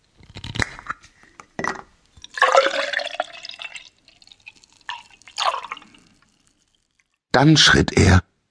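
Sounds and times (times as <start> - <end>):
milk pouring into a glass: 2.2 - 7.2
speech: 7.4 - 8.3.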